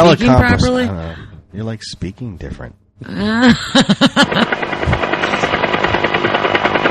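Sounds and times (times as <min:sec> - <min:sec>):
speech: 0:00.0 - 0:04.9
laughter: 0:03.2 - 0:05.2
helicopter rotor sound effect: 0:03.8 - 0:06.8.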